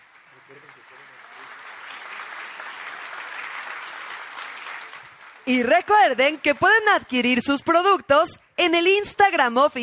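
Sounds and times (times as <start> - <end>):
audience applause: 0.0 - 7.1
speech: 0.5 - 1.2, 5.5 - 9.8.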